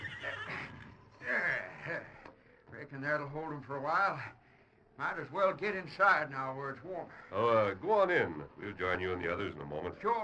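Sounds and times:
stagecoach horse whinnying in a barn: 0.0s - 0.9s
speech: 2.9s - 4.4s, 5.0s - 10.2s.

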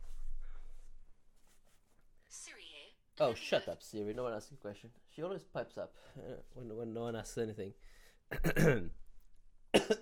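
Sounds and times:
speech: 3.2s - 9.0s, 9.8s - 9.9s
person coughing with raspy harsh coughs: 8.3s - 8.9s, 9.7s - 9.9s.

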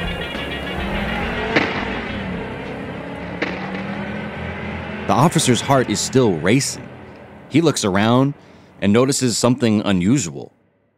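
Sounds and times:
car engine roaring: 0.0s - 10.9s
sharp cracking pops: 3.3s - 4.1s
speech: 5.1s - 6.9s, 7.5s - 10.6s.

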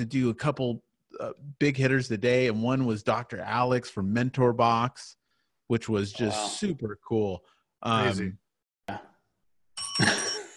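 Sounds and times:
speech: 0.0s - 9.1s
desk bell ringing: 9.7s - 10.5s.

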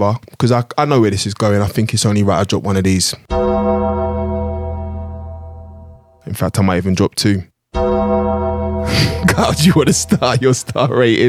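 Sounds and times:
speech: 0.0s - 3.6s, 6.3s - 7.8s, 8.9s - 11.2s
single bell ringing: 3.3s - 6.2s, 7.8s - 10.6s
laughter: 8.9s - 11.2s.

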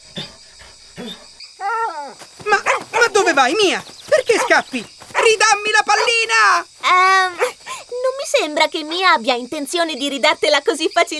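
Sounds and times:
female puppy growling playfully with ball in mouth: 2.0s - 7.7s
speech: 3.4s - 7.6s, 8.3s - 11.1s.

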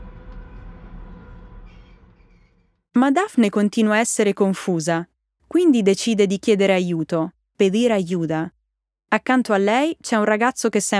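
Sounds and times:
subway train rumbling at a station: 0.0s - 2.6s
speech: 3.0s - 10.9s.

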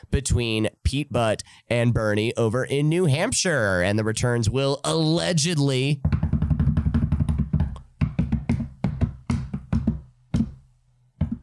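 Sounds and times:
speech: 0.0s - 6.2s
rapid loud knocking on wood: 6.0s - 10.6s, 11.2s - 11.4s.

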